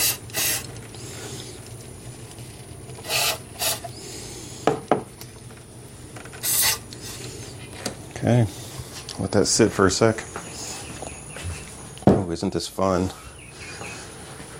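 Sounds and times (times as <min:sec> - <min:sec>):
aerosol cleaner sprayed into an engine throttle: 0:00.0 - 0:00.7, 0:03.0 - 0:03.9, 0:06.4 - 0:07.3
speech: 0:08.2 - 0:08.6, 0:09.2 - 0:10.4, 0:12.4 - 0:13.2.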